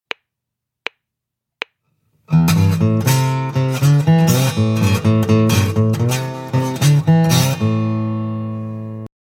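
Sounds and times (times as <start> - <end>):
slide guitar: 2.3 - 9.1.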